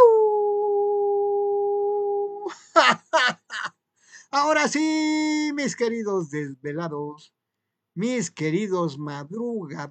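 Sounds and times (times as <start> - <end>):
long steady howl: 0.0 - 2.5
speech: 2.5 - 3.4, 4.3 - 7.4, 8.0 - 9.9.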